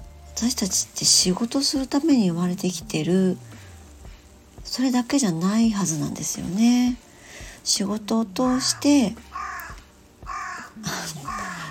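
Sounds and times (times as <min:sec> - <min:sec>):
faint hum: 0:00.0 - 0:11.6
speech: 0:00.4 - 0:03.6, 0:04.7 - 0:09.3
crow cawing outdoors: 0:08.4 - 0:11.6.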